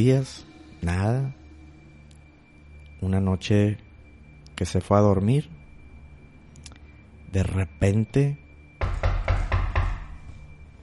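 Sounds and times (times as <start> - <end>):
speech: 0.0 - 1.4, 3.0 - 3.8, 4.6 - 5.6, 7.3 - 9.0
firm knocking on a cabin door: 8.8 - 10.2.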